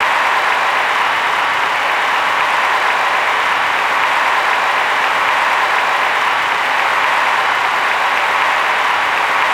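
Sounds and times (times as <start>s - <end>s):
large audience: 0.0s - 9.5s.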